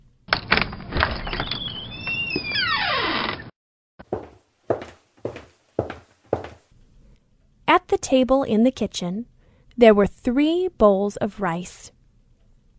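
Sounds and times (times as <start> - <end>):
door creaking open with a long groaning squeal: 0.3 - 3.5
footsteps at walking pace: 4.1 - 6.7
speech: 7.9 - 12.0.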